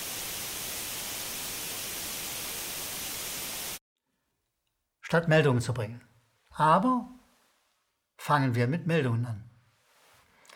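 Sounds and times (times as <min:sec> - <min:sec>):
television white noise static hiss: 0:00.0 - 0:03.8
speech: 0:05.1 - 0:07.2, 0:08.2 - 0:09.5.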